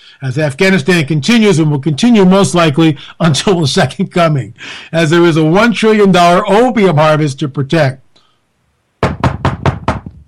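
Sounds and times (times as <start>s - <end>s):
speech: 0.1s - 8.0s
quick loud knocks on a door: 9.0s - 10.2s.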